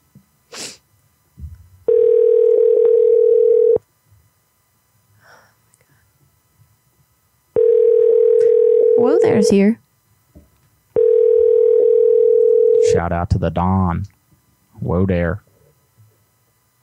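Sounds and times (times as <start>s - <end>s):
telephone dial tone before placing a call: 1.9s - 3.8s, 7.6s - 9.3s, 11.0s - 12.9s
breaths: 5.1s - 6.2s
speech: 9.5s - 9.8s, 13.0s - 14.2s, 14.8s - 15.4s.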